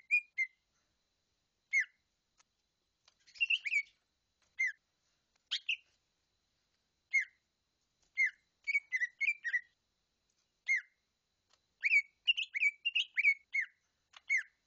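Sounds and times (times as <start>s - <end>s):
bird giving sharp chirped notes and short sliding whistles: 0.0s - 0.6s, 1.7s - 2.0s, 3.3s - 4.0s, 4.6s - 4.8s, 5.5s - 5.8s, 7.1s - 7.4s, 8.2s - 9.7s, 10.6s - 10.9s, 11.8s - 14.5s.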